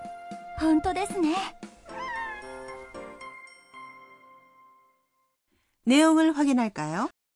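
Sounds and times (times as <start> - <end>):
speech: 0.6 - 1.6, 5.9 - 7.1
cat meowing in a cat café: 1.9 - 3.0.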